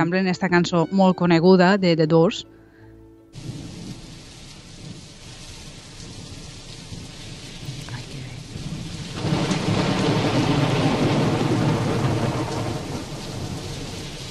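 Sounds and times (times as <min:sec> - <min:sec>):
speech: 0:00.0 - 0:02.6
steady heavy rain hissing in a thunderstorm: 0:03.3 - 0:14.2
deep rumble of thunder: 0:03.4 - 0:14.2.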